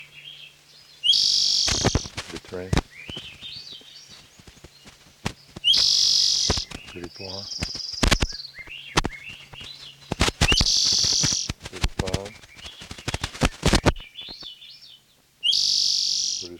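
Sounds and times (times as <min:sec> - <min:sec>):
Swainson's thrushes singing loudly with flute-like spiralling phrases: 0:00.0 - 0:16.5
short noise bursts: 0:01.1 - 0:14.4
sharp clicks: 0:01.7 - 0:03.8, 0:04.4 - 0:08.4, 0:09.0 - 0:14.5
speech: 0:02.5 - 0:03.2, 0:07.2 - 0:07.7.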